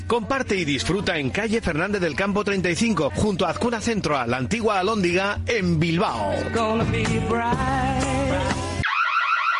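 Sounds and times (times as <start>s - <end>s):
speech: 0.1s - 8.6s
electronic alarm blaring with harsh tones and warbling siren: 8.8s - 9.5s.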